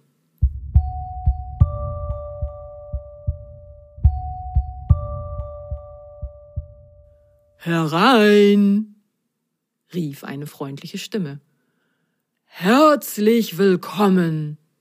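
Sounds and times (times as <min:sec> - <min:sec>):
loud low heartbeat thumping: 0:00.4 - 0:07.2
soft two-note chime: 0:00.8 - 0:07.4
speech: 0:07.6 - 0:08.9, 0:09.9 - 0:11.5, 0:12.5 - 0:14.6.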